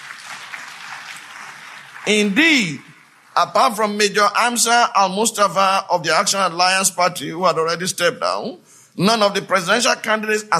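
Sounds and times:
crowd applauding in response to a speech: 0.0s - 3.7s
speech: 2.1s - 10.5s.

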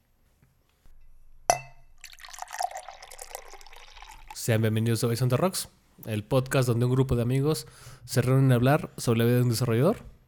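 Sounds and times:
glasses clinking in a toast: 1.5s - 3.3s
speech: 4.4s - 10.2s.

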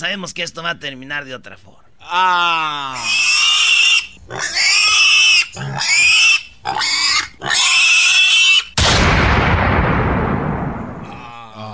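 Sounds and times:
speech: 0.0s - 3.6s, 4.3s - 4.9s, 5.5s - 7.8s
pig squealing in shrill strained bursts: 2.0s - 8.8s
sudden loud blast with long rumbling decay: 8.8s - 11.1s.

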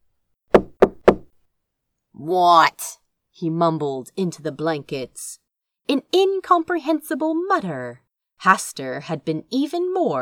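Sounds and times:
knocks on a wooden bedroom door: 0.6s - 1.3s
speech: 2.2s - 10.1s.

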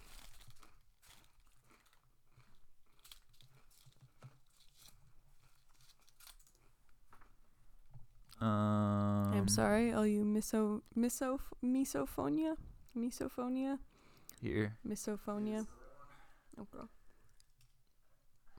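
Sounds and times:
crisp crinkling of a plastic fortune cookie wrapper: 0.0s - 7.3s
brittle fortune cookie cracking and crunching: 0.0s - 7.4s
speech: 8.4s - 8.8s, 9.4s - 15.8s, 16.6s - 17.0s.

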